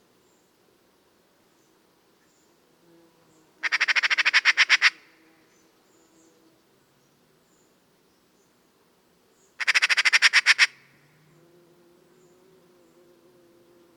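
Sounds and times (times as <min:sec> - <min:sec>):
Eurasian magpie Pica pica chattering in harsh rattles: 0:03.6 - 0:05.0, 0:09.6 - 0:10.8.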